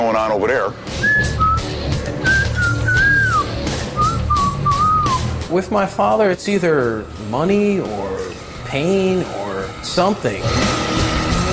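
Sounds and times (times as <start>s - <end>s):
speech: 0.1s - 1.4s, 5.5s - 8.1s, 8.7s - 10.8s
person whistling a wandering sliding melody: 1.0s - 5.3s.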